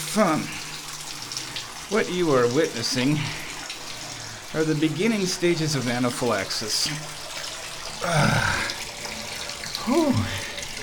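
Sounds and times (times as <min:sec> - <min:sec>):
cold tap water running into a bathtub and over a person's feet: 0:00.0 - 0:10.8
speech: 0:00.1 - 0:00.6, 0:01.9 - 0:03.4, 0:04.5 - 0:07.2, 0:08.0 - 0:08.7, 0:09.8 - 0:10.4
person letting out short drawn-out vocal sounds: 0:08.0 - 0:08.8, 0:09.8 - 0:10.6.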